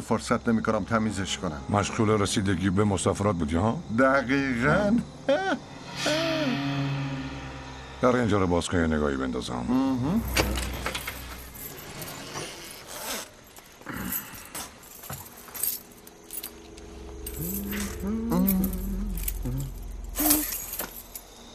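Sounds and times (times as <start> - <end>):
speech: 0.0 - 6.6, 8.0 - 10.9
keys jangling and clinking: 10.2 - 21.4
low engine rumble: 16.3 - 21.5.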